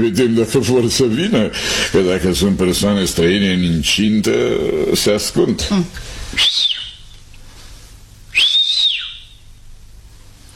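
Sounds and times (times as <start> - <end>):
speech: 0.0 - 6.7
person whistling to summon someone: 6.4 - 7.0, 8.3 - 9.4.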